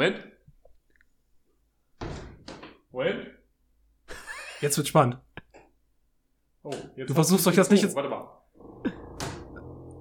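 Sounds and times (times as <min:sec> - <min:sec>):
speech: 0:00.0 - 0:00.3, 0:02.9 - 0:03.4, 0:04.6 - 0:05.2, 0:06.6 - 0:09.0
door slamming shut: 0:02.0 - 0:02.6, 0:09.0 - 0:09.8.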